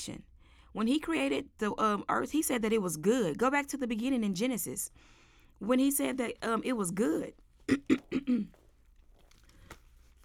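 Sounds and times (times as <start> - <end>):
speech: 0.0 - 8.6
throat clearing: 7.7 - 8.6.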